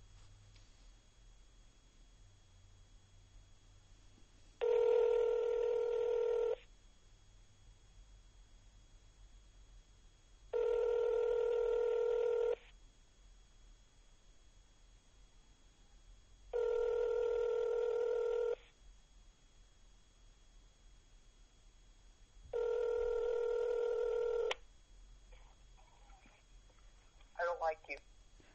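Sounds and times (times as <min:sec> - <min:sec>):
ringback tone of an outgoing phone call ringing unanswered: 0:04.6 - 0:06.6, 0:10.5 - 0:12.6, 0:16.5 - 0:18.6, 0:22.5 - 0:24.5.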